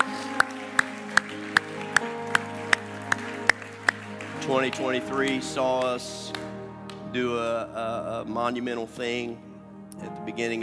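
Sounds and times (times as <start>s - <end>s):
hands clapping in a steady rhythm: 0.0s - 7.2s
speech: 4.5s - 6.4s, 7.1s - 10.6s.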